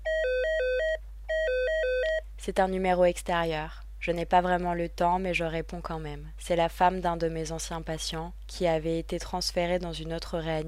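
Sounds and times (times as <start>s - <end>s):
hospital ward telephone ringing in warbling electronic bursts: 0.0s - 2.2s
low steady hum: 0.0s - 10.6s
speech: 2.4s - 10.6s.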